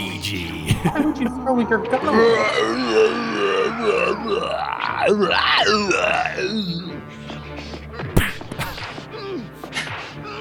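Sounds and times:
laughter: 0.0s - 4.6s
action movie soundtrack music: 0.0s - 6.6s
speech: 0.2s - 7.3s
punch to the face in an action movie fight: 8.2s - 9.0s.

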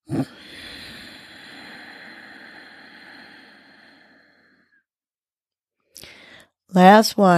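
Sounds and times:
slow exhale through the nose with the throat contracted: 0.2s - 4.7s.

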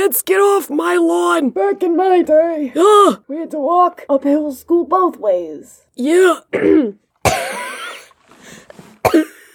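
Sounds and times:
speech: 0.0s - 7.6s
person coughing harshly: 6.5s - 8.1s, 9.0s - 9.5s
wheezy breathing: 8.0s - 9.5s.

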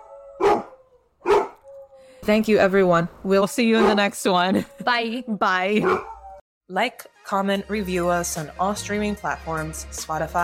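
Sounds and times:
dog with thin sustained howl: 0.0s - 2.2s, 5.8s - 6.4s
dog with loud barks: 0.4s - 1.6s, 3.8s - 4.1s, 5.8s - 6.4s
speech: 2.3s - 6.1s, 6.7s - 10.4s.

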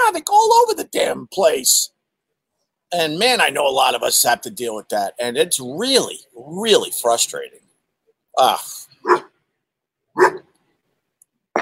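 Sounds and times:
speech: 0.2s - 2.0s, 2.9s - 7.6s, 8.4s - 9.2s
male dog barking: 9.0s - 9.3s, 10.2s - 10.4s.

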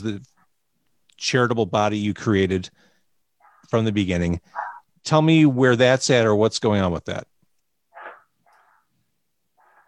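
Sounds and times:
speech: 0.0s - 0.4s, 1.2s - 2.9s, 3.7s - 7.3s
dogs barking: 4.5s - 4.9s, 7.9s - 9.0s, 9.6s - 9.8s.

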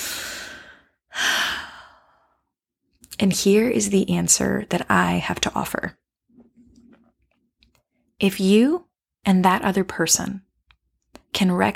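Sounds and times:
deep inhale: 0.0s - 2.4s
speech: 3.2s - 6.0s, 8.2s - 10.5s, 11.3s - 11.7s.

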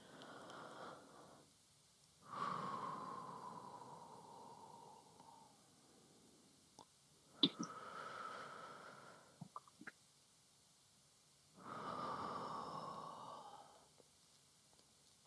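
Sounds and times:
audible deep breathing during a breath-awareness exercise: 0.0s - 1.5s, 2.2s - 6.5s, 7.5s - 9.4s, 11.6s - 14.0s.

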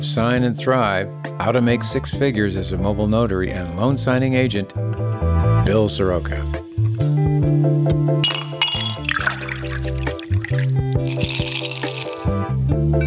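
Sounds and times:
speech: 0.0s - 6.6s
music with deep bass line: 0.0s - 13.0s
glasses clinking together: 8.2s - 12.1s
drink pouring with bubbly splashing rush: 8.2s - 12.5s.

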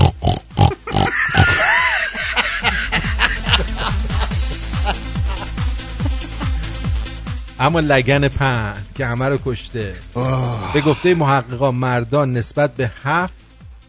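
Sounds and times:
male wild boar grunting: 0.0s - 1.6s, 10.2s - 11.5s
laughter: 0.6s - 6.8s
speech: 7.6s - 13.4s.

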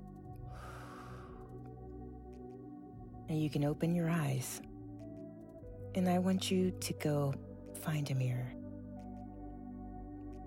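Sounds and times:
deep exhale during a guided breathing exercise: 0.5s - 1.4s
speech: 3.3s - 4.7s, 6.0s - 8.6s.

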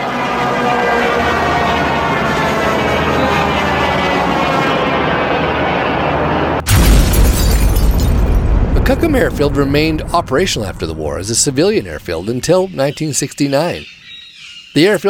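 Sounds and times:
plane roaring as it goes down: 0.0s - 13.4s
heavy deep explosive impact of a crashing plane: 6.6s - 12.8s
speech: 9.1s - 14.0s, 14.7s - 15.0s.

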